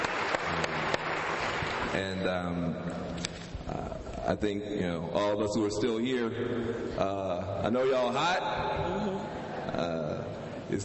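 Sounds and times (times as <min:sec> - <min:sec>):
audience applause after a speaker's presentation: 0:00.0 - 0:02.0
speech: 0:02.0 - 0:10.0.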